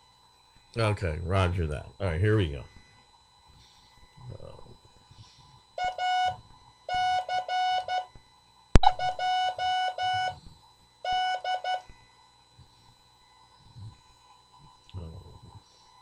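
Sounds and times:
speech: 0:00.7 - 0:02.8
Morse code tones sending an amateur radio callsign: 0:05.8 - 0:08.1, 0:08.8 - 0:10.4, 0:11.1 - 0:11.8.

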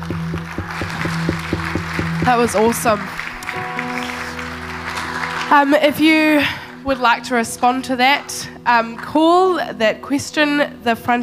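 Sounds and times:
audience applause: 0:00.0 - 0:05.9
sustained keyboard-like music tones: 0:00.0 - 0:07.0
speech: 0:02.3 - 0:03.2, 0:05.5 - 0:11.2.

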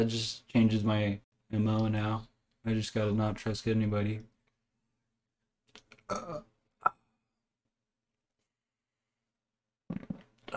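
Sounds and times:
speech: 0:00.0 - 0:04.3, 0:06.1 - 0:06.5
person burping: 0:06.1 - 0:07.1, 0:09.9 - 0:10.5.

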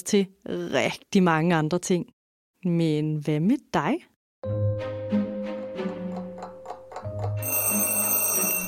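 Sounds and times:
speech: 0:00.0 - 0:05.0
alarm clock beeping and ringing: 0:06.0 - 0:08.6.

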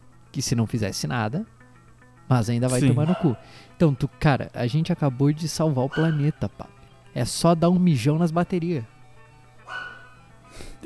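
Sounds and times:
speech: 0:00.4 - 0:01.6, 0:02.3 - 0:08.9
dog barking and yelping: 0:03.0 - 0:03.6, 0:05.9 - 0:06.4, 0:09.7 - 0:10.2.

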